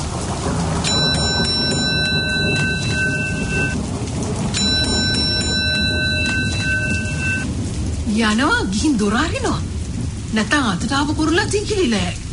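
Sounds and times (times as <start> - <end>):
steady rain: 0.0 - 12.3
bright sustained high tones: 0.9 - 3.8, 4.6 - 7.4
speech: 8.2 - 9.7, 10.3 - 12.2.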